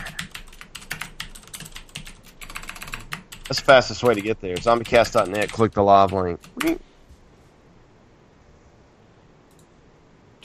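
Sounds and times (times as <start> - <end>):
typing on a computer keyboard to sign in to a game: 0.0 - 6.8
speech: 3.5 - 6.9.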